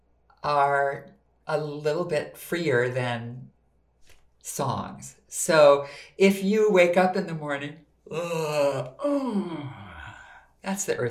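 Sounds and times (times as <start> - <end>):
speech: 0.4 - 3.5, 4.4 - 9.8, 10.6 - 11.0
person giving a long vocal yawn: 8.1 - 10.5.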